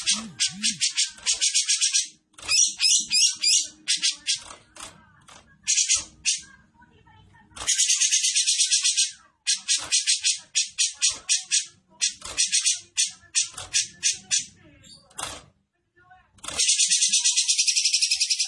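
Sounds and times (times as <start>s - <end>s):
grey-cheeked bulbul chattering in harsh high buzzy bursts: 0.0s - 4.6s, 5.6s - 6.5s, 7.6s - 14.6s, 16.5s - 18.4s
speech: 0.1s - 8.3s, 9.1s - 15.5s, 16.6s - 17.3s.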